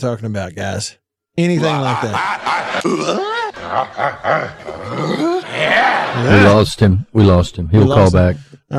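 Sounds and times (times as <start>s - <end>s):
speech: 0.0s - 8.7s
laughter: 1.6s - 6.6s
comedic sound effect button with man's loud throaty grunting roars: 2.8s - 6.3s.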